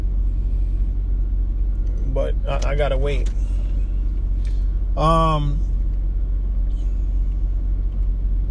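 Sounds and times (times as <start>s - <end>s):
large truck engine rumbling while backing up in a street: 0.0s - 8.4s
speech: 2.2s - 3.5s, 5.0s - 5.7s.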